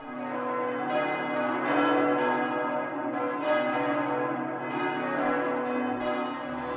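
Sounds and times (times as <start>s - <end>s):
church bells ringing: 0.0s - 6.7s.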